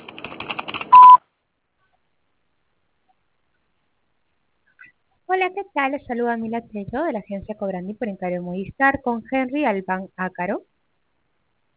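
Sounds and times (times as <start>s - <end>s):
voicemail beep on a phone line: 0.9s - 1.2s
speech: 5.4s - 10.7s.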